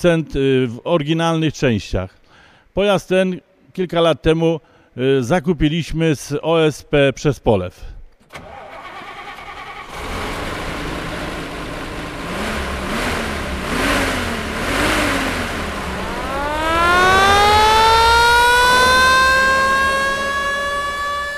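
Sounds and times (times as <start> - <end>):
speech: 0.0 - 2.2, 2.8 - 8.5
restored 1973 Star 25 fire truck engine idling and revving: 8.7 - 21.3
mechanical siren of a restored 1973 Star 25 fire truck: 15.6 - 21.3.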